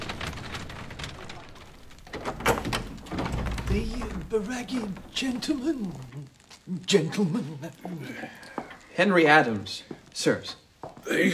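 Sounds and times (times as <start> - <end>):
black door swinging shut with a sharp thud: 0.0 - 5.4
rustling shuffling movement: 0.0 - 11.3
speech: 3.7 - 11.3.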